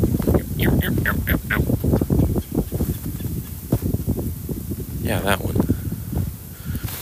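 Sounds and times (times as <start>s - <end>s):
red-bellied woodpecker calling: 0.0s - 3.7s
steady outdoor noise: 0.0s - 6.9s
speech: 5.1s - 5.6s.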